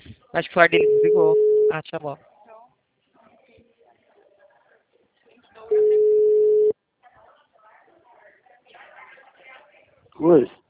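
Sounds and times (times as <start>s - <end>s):
speech: 0.4s - 2.3s, 10.2s - 10.6s
loud steady telephone beep while calling another number: 0.7s - 1.8s, 5.7s - 6.7s.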